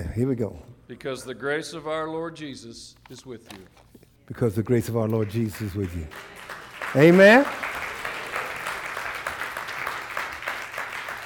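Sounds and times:
speech: 0:00.2 - 0:07.8
audience clapping hands: 0:04.4 - 0:11.2.

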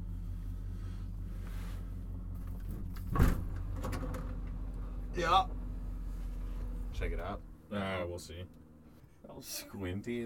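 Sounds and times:
steady low engine-like rumble: 0:00.0 - 0:10.2
vehicle door opening with clunk and rattle: 0:02.4 - 0:04.6
speech: 0:05.2 - 0:05.6, 0:07.0 - 0:08.6, 0:09.2 - 0:10.2.

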